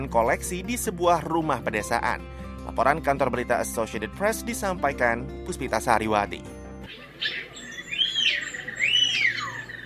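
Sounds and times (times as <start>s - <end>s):
speech: 0.0s - 7.5s
Bali myna calls: 6.9s - 9.8s.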